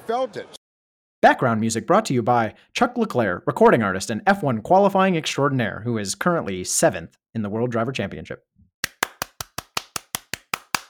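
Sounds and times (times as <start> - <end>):
speech: 0.1 - 0.6, 1.2 - 8.5
single person clapping hands: 8.8 - 10.8.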